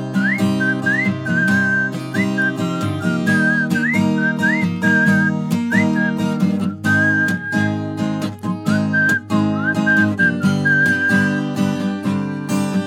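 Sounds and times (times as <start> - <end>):
whistled melody in a song: 0.1 - 11.7, 12.2 - 12.8.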